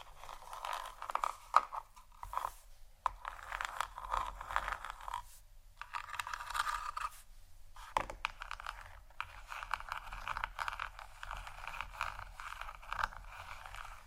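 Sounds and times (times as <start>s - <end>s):
gentle crackly ASMR scratching: 0.0s - 14.0s.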